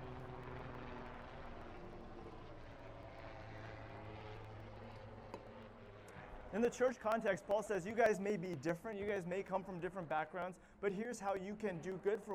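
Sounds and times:
helicopter flying overhead with engine and rotor roar: 0.0 - 12.3
speech: 6.5 - 12.3.

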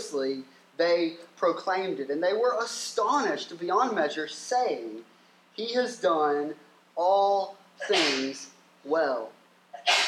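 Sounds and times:
speech: 0.1 - 10.0
person sneezing: 7.8 - 8.4, 9.8 - 10.0.

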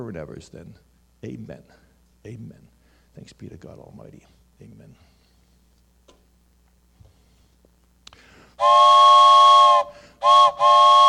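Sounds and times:
speech: 0.0 - 5.1, 8.6 - 9.1
loud shrill multi-toned steam train whistle: 8.6 - 11.0.

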